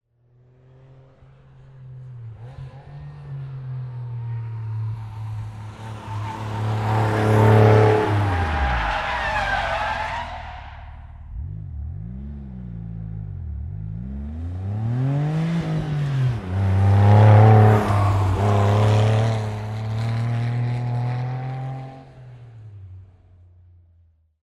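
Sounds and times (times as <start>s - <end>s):
Porsche Turbo rushing by, turning around and coming back: 0.3s - 23.1s.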